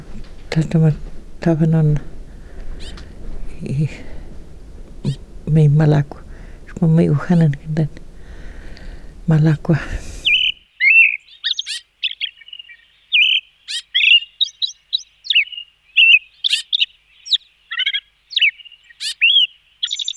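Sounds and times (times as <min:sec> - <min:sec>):
speech: 0:00.6 - 0:02.1, 0:03.6 - 0:04.1, 0:05.5 - 0:06.2, 0:06.8 - 0:08.0, 0:09.3 - 0:10.0
Austral thrush singing whistled song: 0:10.0 - 0:20.1.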